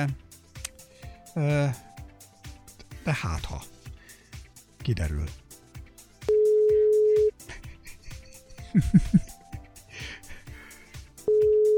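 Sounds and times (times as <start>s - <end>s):
speech: 0.0s - 0.2s, 1.4s - 1.9s, 3.1s - 3.7s, 4.8s - 5.4s, 8.7s - 9.2s
ringing tone of an unanswered telephone call: 6.3s - 7.3s, 11.3s - 11.7s.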